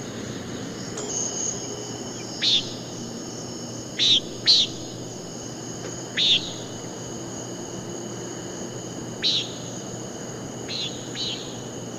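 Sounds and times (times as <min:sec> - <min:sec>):
continuous shrill insect hum: 0:00.0 - 0:11.9
Common nighthawk repeating harsh buzzy peent notes: 0:01.0 - 0:05.4, 0:06.0 - 0:07.0, 0:09.1 - 0:09.9, 0:10.6 - 0:11.9.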